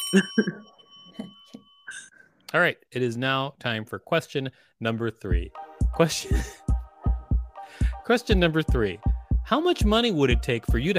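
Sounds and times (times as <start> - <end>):
bright metallic bell ringing: 0.0 - 2.2
speech: 0.1 - 1.3, 2.5 - 6.6, 8.1 - 10.9.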